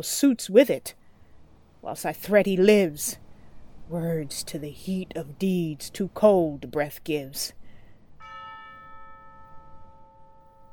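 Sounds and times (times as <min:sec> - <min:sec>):
speech: 0:00.0 - 0:01.0, 0:01.8 - 0:03.2, 0:03.9 - 0:07.6
low rumble: 0:00.0 - 0:08.2
single bell striking and ringing: 0:08.2 - 0:10.7.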